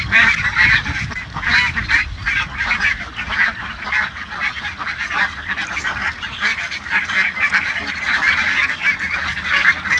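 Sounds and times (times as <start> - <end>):
duck splashing by a river: 0.0 - 9.9.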